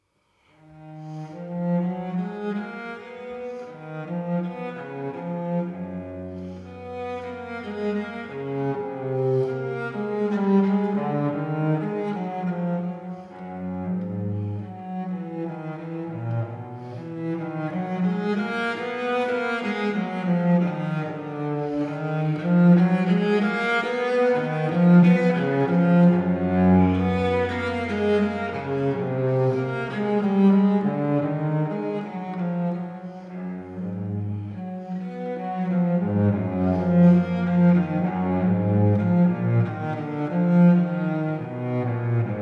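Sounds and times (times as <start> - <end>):
cello mix: 0.0 - 42.3.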